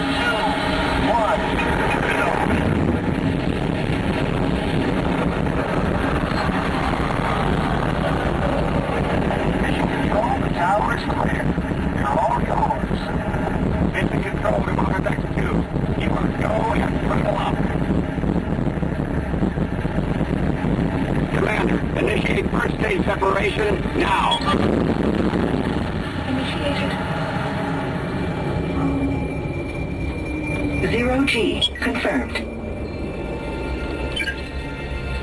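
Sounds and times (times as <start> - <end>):
rocket main engines roaring at launch: 0.0 - 35.2.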